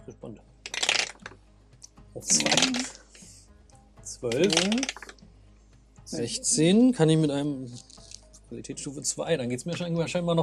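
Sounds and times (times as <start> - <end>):
speech: 0.2 - 0.6, 2.2 - 3.0, 4.1 - 5.0, 6.1 - 7.9, 8.5 - 10.4
dice rattling and clattering across a hard surface: 0.7 - 1.4, 2.3 - 3.0, 4.3 - 5.2.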